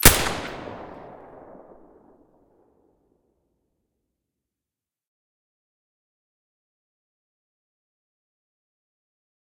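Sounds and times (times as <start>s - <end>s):
SV-98 rifle shot with silencer: 0.0s - 2.1s.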